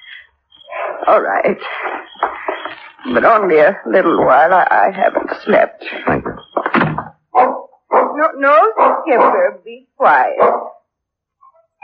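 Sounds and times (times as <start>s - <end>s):
speech: 1.0s - 2.3s, 3.0s - 6.4s, 8.3s - 10.7s
dog barking: 7.3s - 10.8s.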